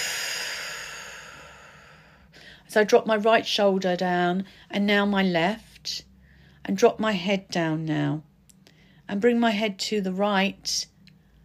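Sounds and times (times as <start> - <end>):
slow deep breathing while holding hands in a namaste: 0.0 - 2.7, 6.1 - 6.6, 8.6 - 9.1
speech: 2.7 - 8.3, 9.1 - 10.9.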